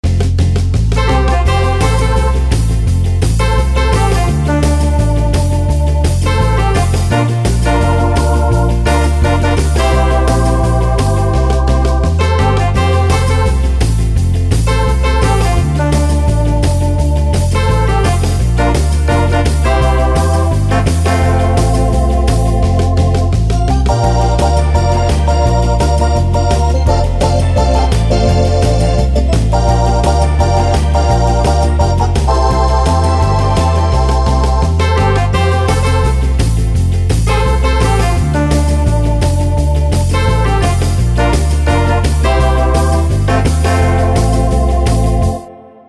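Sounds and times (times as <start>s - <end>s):
electric guitar with drawbars twist: 0.0s - 45.8s.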